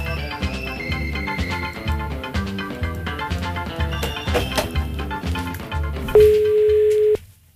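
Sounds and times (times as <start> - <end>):
rhythmic music: 0.0 - 7.0
telephone call ringing tone: 6.2 - 7.2.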